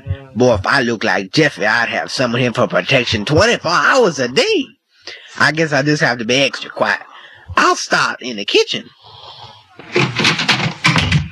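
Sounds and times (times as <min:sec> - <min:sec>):
speech: 0:00.4 - 0:09.1, 0:09.8 - 0:10.3
door slamming in a house: 0:09.8 - 0:11.3
rattling knocks and bumps of a door: 0:09.8 - 0:11.3.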